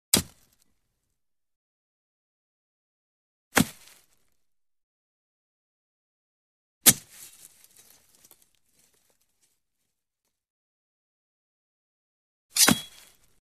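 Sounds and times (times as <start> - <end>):
sword sticking into ground: 0.1 - 0.6, 3.6 - 4.0, 6.8 - 7.3, 12.5 - 13.4.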